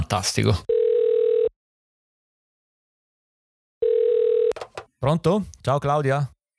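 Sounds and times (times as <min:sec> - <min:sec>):
speech: 0:00.1 - 0:00.7, 0:05.0 - 0:06.4
phone ringback tone: 0:00.7 - 0:01.5, 0:03.8 - 0:04.6.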